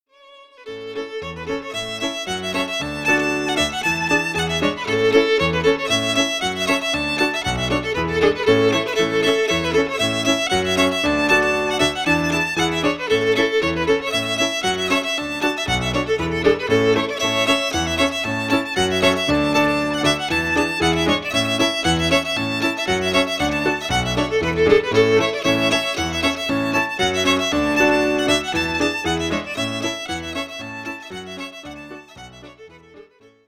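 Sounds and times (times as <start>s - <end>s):
reel music: 0.7s - 32.7s.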